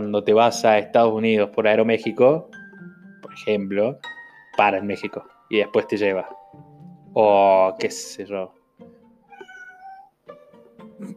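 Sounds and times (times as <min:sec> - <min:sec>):
speech: 0:00.0 - 0:02.6, 0:03.4 - 0:08.6
cat meowing: 0:09.2 - 0:10.2.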